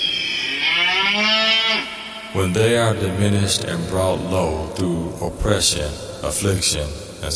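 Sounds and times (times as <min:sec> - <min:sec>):
cow mooing: 0:00.0 - 0:02.4
speech: 0:02.3 - 0:07.3.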